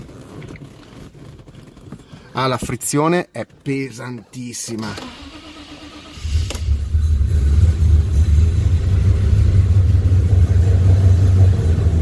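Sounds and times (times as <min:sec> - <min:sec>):
speech: 0:02.4 - 0:05.2
Maserati car engine starting on two cylinders and rumbling roughly: 0:04.9 - 0:12.0.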